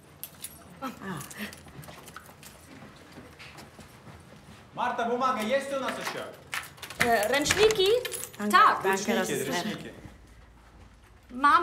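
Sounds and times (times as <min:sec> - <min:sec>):
keys rattling in a hotel room door lock: 0:00.0 - 0:02.7, 0:05.8 - 0:09.4
speech: 0:00.8 - 0:02.0, 0:04.8 - 0:06.4, 0:07.0 - 0:10.0, 0:11.3 - 0:11.6.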